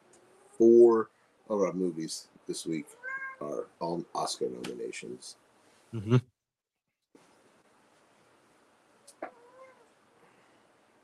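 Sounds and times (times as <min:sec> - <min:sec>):
steady hiss of noise: 0:00.0 - 0:06.2, 0:07.2 - 0:11.0
speech: 0:00.6 - 0:06.3
cat in heat meowing: 0:02.8 - 0:03.5, 0:09.2 - 0:09.9.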